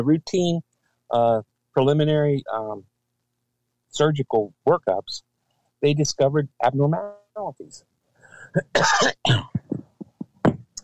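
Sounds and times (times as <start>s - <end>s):
speech: 0.0s - 2.9s, 3.9s - 7.9s, 8.5s - 9.6s
throat-clearing hacks: 8.3s - 10.8s
person coughing: 8.5s - 10.6s.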